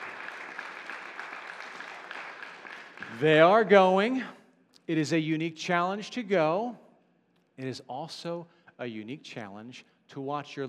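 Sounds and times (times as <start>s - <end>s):
church audience applauding: 0.0s - 3.6s
speech: 3.2s - 6.8s, 7.6s - 10.6s.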